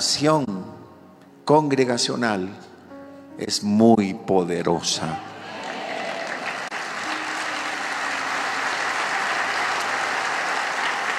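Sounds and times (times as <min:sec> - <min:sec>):
speech: 0:00.0 - 0:00.6, 0:01.5 - 0:02.7, 0:03.4 - 0:05.3
large crowd applauding: 0:05.4 - 0:11.1.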